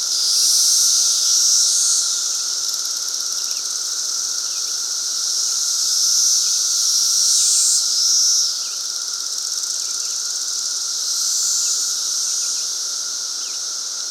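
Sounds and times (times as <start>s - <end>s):
periodical cicadas in dense chorus at Fox Ridge Bluff: 0.0s - 14.0s.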